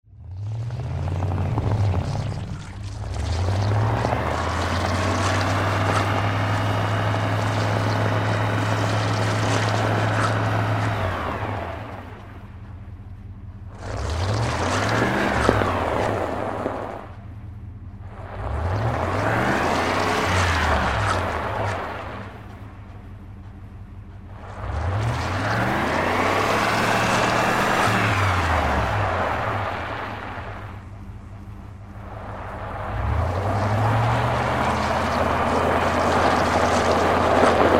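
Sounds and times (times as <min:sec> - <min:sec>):
wheels spinning: 0:00.4 - 0:37.7.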